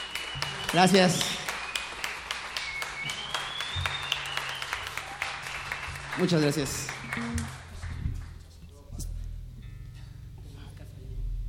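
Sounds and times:
faint whistles: 0.0 - 5.0
audience applauding at a music performance: 0.0 - 8.5
speech: 0.7 - 1.4, 6.2 - 7.6.

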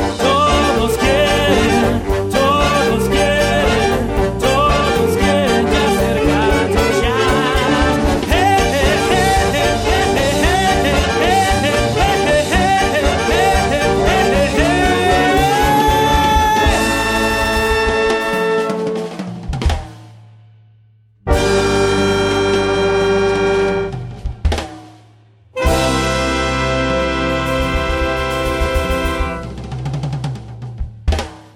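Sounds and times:
instrumental jazz played by a children's big band: 0.0 - 20.1, 21.3 - 25.0, 25.6 - 31.5.

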